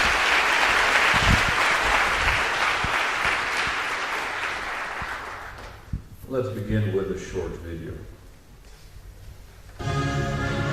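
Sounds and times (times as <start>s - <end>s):
large audience applause at the start of a talk: 0.0s - 5.8s
speech: 6.3s - 8.2s.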